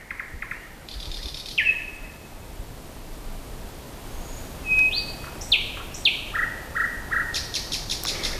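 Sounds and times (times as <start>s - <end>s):
nightingale singing at night: 0.0s - 2.3s, 4.1s - 8.3s
faint hiss of outdoor noise: 0.0s - 8.3s.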